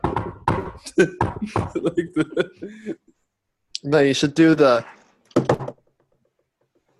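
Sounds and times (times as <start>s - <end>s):
rapid insistent knocking on a door: 0.0s - 1.9s, 5.4s - 5.8s
speech: 0.8s - 3.1s, 3.8s - 5.5s
laughter: 0.9s - 3.0s.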